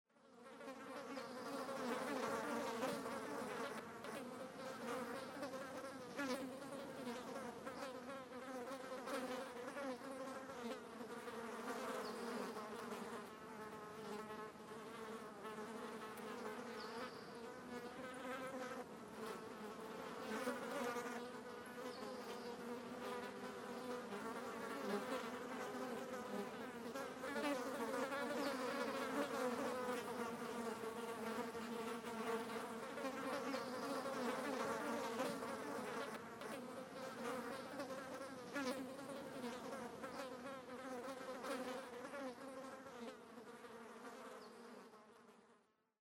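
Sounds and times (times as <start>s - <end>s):
flies buzzing: 0.2s - 45.6s.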